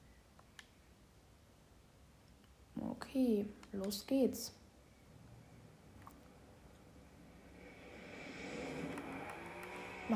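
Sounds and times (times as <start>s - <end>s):
speech: 3.0s - 4.6s
racing video game car engine accelerating: 7.2s - 10.1s.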